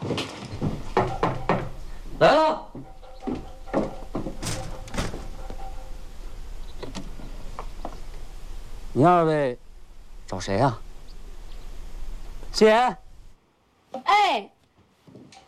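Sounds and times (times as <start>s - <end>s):
door pulled open with a creaking scrape: 0.0s - 2.0s, 2.7s - 8.2s
speech: 2.2s - 2.8s, 9.0s - 9.6s, 10.3s - 10.8s, 12.6s - 13.0s, 14.3s - 14.5s.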